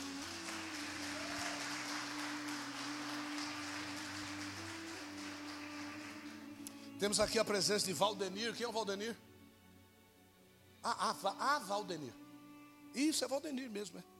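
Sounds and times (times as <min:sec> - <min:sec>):
large crowd applauding: 0:00.0 - 0:07.6
speech: 0:07.0 - 0:09.2, 0:10.8 - 0:12.2, 0:12.9 - 0:14.1.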